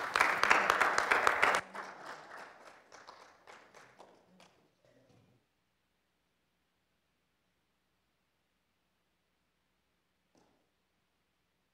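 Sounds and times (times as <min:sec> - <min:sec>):
crowd clapping: 0:00.0 - 0:04.9.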